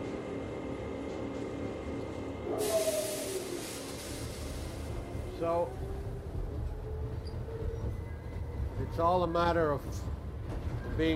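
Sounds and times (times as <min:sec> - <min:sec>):
low rumble inside a moving train: 0:00.0 - 0:11.1
soft hiss inside a moving train: 0:02.6 - 0:05.0
speech: 0:05.4 - 0:05.9, 0:08.9 - 0:10.2, 0:11.0 - 0:11.1.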